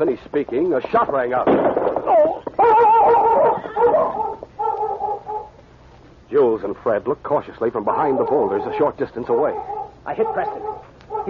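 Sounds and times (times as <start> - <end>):
speech: 0.0 - 2.8, 6.3 - 11.2
excited dog whimpering and yelping: 2.0 - 5.5, 7.9 - 11.2.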